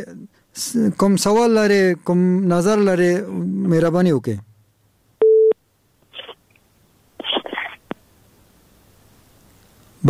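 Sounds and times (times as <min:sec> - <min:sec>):
speech: 0:00.0 - 0:04.5
phone busy signal beep of a failed call: 0:05.2 - 0:05.6
short rustly bursts of noise: 0:06.1 - 0:06.4, 0:07.2 - 0:07.9.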